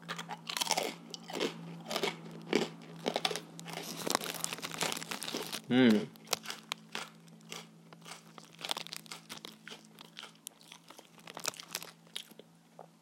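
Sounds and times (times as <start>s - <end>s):
faint low hum: 0.0s - 12.9s
person chewing crunchy food: 0.0s - 12.9s
speech: 5.7s - 6.2s.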